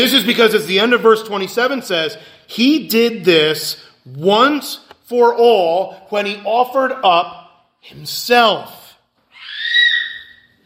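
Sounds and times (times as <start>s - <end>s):
speech: 0.0s - 8.8s
loud high-pitched scream: 9.3s - 10.6s.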